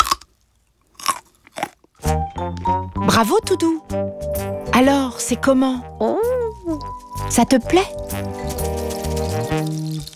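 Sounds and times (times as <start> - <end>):
child biting and crunching a piece of carrot: 0.0 - 2.3, 7.9 - 10.1
speech: 3.2 - 8.4.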